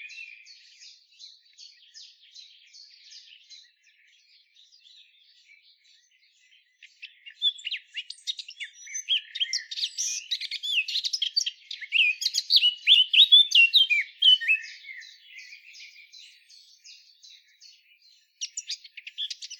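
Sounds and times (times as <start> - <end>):
Eurasian blackcap Sylvia atricapilla singing: 0.0 - 19.5.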